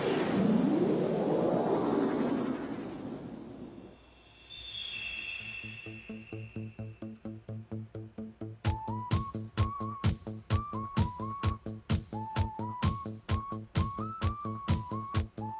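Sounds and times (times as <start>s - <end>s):
rising whooshing swell: 0.0s - 7.0s
movie end-credits tune played on an electronic keyboard: 5.6s - 15.5s.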